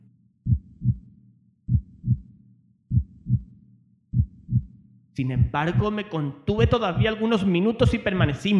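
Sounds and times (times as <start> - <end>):
heartbeat sound effect: 0.5 - 1.1, 1.7 - 2.3, 2.9 - 7.2, 7.8 - 8.4
speech: 5.2 - 8.5.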